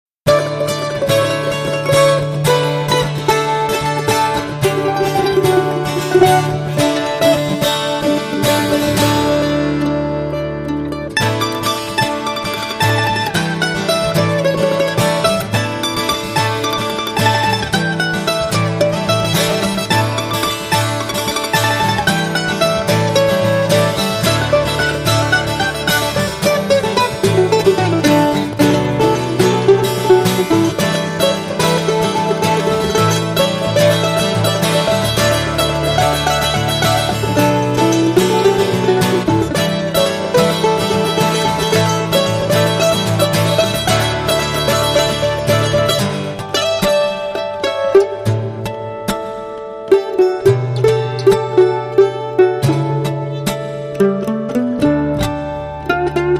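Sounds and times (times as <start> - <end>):
mandolin blues: 0.0 - 56.3.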